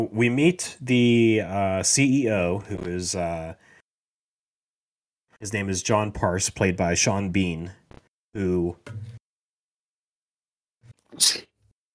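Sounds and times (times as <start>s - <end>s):
speech: 0.0s - 3.7s, 5.4s - 7.8s, 8.4s - 9.2s, 11.2s - 11.5s
person sneezing: 11.1s - 11.6s.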